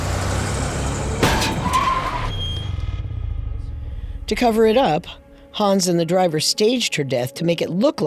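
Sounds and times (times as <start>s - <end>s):
car tire screech as the vehicle skids: 0.0s - 3.3s
car engine rumbling: 0.0s - 5.2s
car crash: 0.6s - 3.9s
speech: 4.3s - 8.0s.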